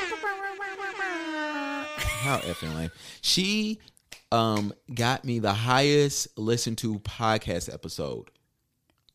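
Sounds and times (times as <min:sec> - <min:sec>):
air horn sound effect blare: 0:00.0 - 0:02.4
speech: 0:02.2 - 0:08.4.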